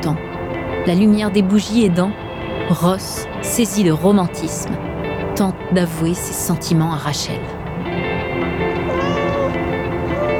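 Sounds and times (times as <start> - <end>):
speech: 0.0 - 7.6
cat meowing in drawn-out wavering cries: 8.8 - 10.3.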